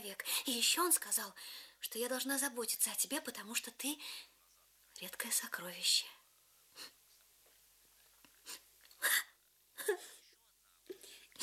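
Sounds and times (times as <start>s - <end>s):
speech: 0.0s - 4.3s, 5.0s - 6.2s, 9.8s - 10.2s
woman sniffling: 8.4s - 10.2s, 11.0s - 11.4s
woman crying softly: 8.5s - 10.3s, 11.0s - 11.4s.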